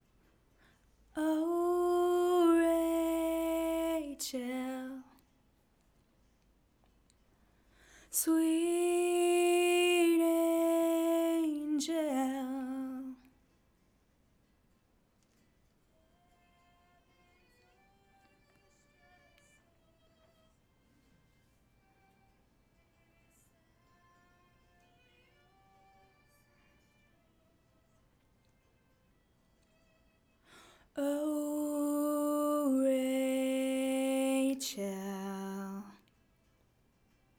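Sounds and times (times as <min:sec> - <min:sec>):
backing vocals: 0:01.2 - 0:05.1, 0:08.1 - 0:13.2, 0:30.9 - 0:36.0.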